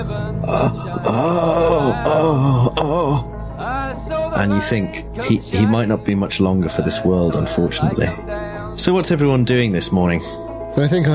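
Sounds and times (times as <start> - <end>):
speech: 0.0 - 11.1
person imitating a pained groan of a wounded man: 0.4 - 3.4.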